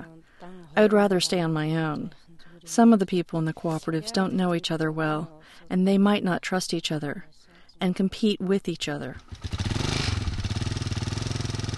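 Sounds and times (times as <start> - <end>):
speech: 0.0 - 9.7
motorcycle engine running as a couple set off: 9.2 - 11.7.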